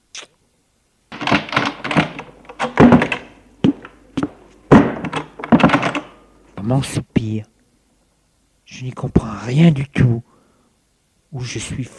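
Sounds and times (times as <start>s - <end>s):
wooden door opening and swinging shut: 1.1s - 6.2s
speech: 6.7s - 7.5s, 8.8s - 10.3s, 11.3s - 11.9s.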